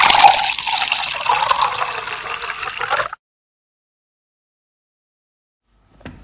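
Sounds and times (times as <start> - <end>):
water running from a tap: 0.0 - 3.2.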